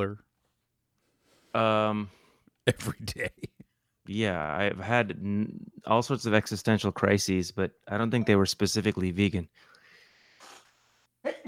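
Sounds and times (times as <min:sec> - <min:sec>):
speech: 0:00.0 - 0:00.3, 0:01.5 - 0:09.7, 0:11.2 - 0:11.4
short breathy sneeze: 0:10.4 - 0:11.4.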